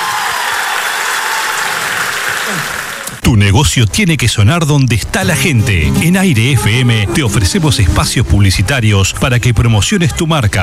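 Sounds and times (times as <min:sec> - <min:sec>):
dense applause from a large audience in an indoor hall: 0:00.0 - 0:03.2
speech: 0:03.3 - 0:10.6.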